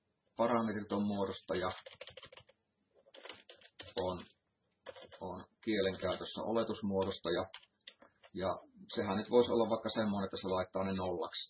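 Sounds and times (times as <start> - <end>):
speech: 0.4 - 2.2, 5.2 - 7.6, 8.4 - 11.4
typing code on a computer keyboard: 1.6 - 6.4, 7.0 - 8.4.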